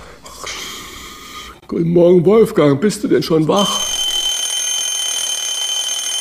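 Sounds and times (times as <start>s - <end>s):
speech: 1.8s - 3.9s
alarm clock ringing with a shrill electronic tone: 3.6s - 6.1s.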